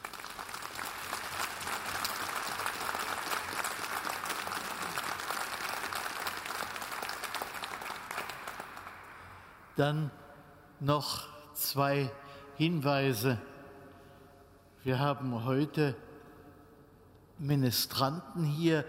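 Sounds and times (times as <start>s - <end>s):
room full of people applauding: 0.0s - 9.6s
speech: 9.8s - 10.2s, 10.8s - 13.5s, 14.8s - 16.1s, 17.4s - 18.8s.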